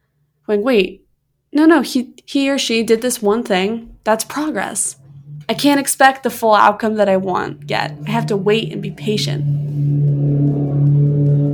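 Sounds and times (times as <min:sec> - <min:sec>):
speech: 0:00.5 - 0:09.6
loud motorcycle engine revving: 0:06.8 - 0:11.5.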